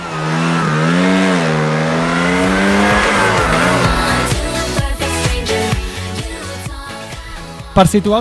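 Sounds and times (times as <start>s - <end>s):
faint tire squeal: 0.0s - 4.3s
racing engines revving: 0.0s - 6.0s
speech: 7.8s - 8.1s.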